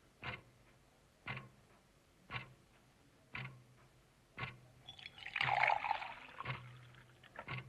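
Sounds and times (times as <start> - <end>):
soft regular ticks: 0.0 - 4.7, 6.3 - 7.6
water poured into a glass: 4.9 - 7.4.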